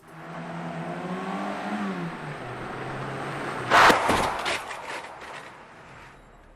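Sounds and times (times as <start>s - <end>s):
car engine humming and revving: 0.0s - 4.0s
crash-test dummy head slamming into car at 50 km/h: 3.7s - 5.2s.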